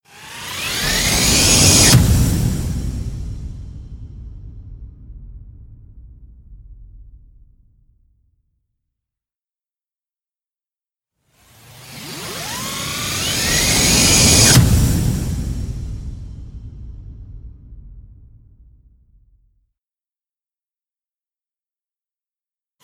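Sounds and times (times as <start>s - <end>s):
whooshes: 0.4s - 7.8s, 11.9s - 19.1s.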